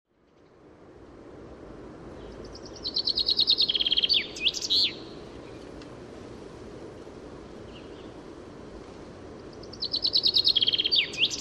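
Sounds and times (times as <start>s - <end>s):
background noise: 0.1s - 11.3s
common chaffinch Fringilla coelebs song: 2.0s - 5.9s, 6.9s - 11.3s.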